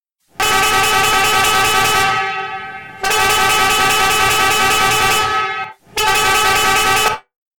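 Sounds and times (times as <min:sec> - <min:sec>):
Italian bus horn honking: 0:00.4 - 0:07.3.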